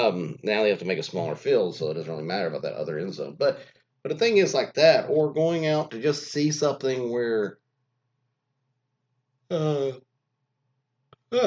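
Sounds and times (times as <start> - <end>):
speech: 0.0 - 7.6, 9.5 - 10.0
person yawning: 9.5 - 10.0.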